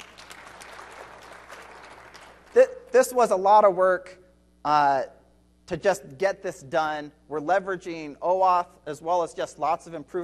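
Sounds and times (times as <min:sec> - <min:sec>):
audience applause at a software product demonstration: 0:00.0 - 0:02.5
speech: 0:02.6 - 0:10.2.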